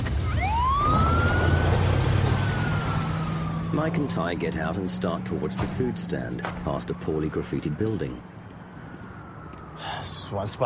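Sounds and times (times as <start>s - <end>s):
engine and traffic rumble: 0.0s - 10.6s
police squad car siren wailing as the car pulls away: 0.0s - 10.6s
speech: 3.8s - 8.4s, 10.3s - 10.6s.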